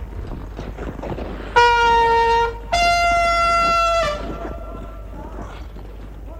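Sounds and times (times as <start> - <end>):
low rumble: 0.0 - 6.3
hand horn signal blasts: 1.6 - 5.0.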